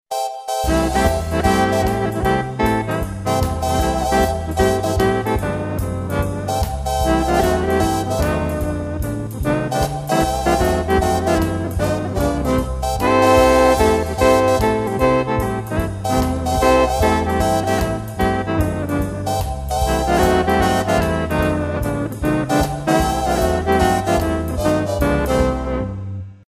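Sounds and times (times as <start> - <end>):
big band playing: 0.1 - 26.0.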